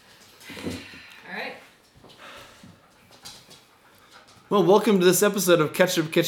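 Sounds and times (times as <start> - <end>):
anxious dog panting: 2.1 - 5.5
speech: 4.5 - 6.2.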